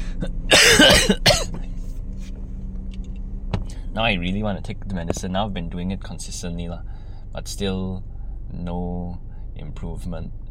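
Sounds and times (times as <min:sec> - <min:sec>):
person coughing: 0:00.1 - 0:01.7
speech: 0:04.0 - 0:10.4.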